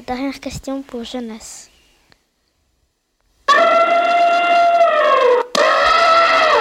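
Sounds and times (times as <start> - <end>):
speech: 0.0 - 1.7
elephant trumpeting: 3.5 - 6.5.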